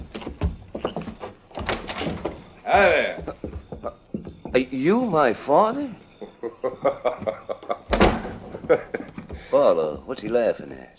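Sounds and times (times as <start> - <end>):
door pulled open with a sharp clunk: 0.0 - 2.6, 7.9 - 9.5
rattling knocks and scrapes: 0.0 - 5.3, 7.2 - 10.6
speech: 2.0 - 6.0, 9.6 - 10.9
laughter: 6.2 - 9.5.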